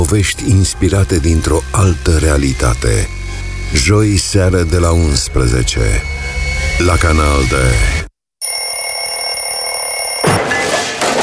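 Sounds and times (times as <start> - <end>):
speech: 0.1 - 8.0
alarm clock bell ringing: 8.4 - 10.3.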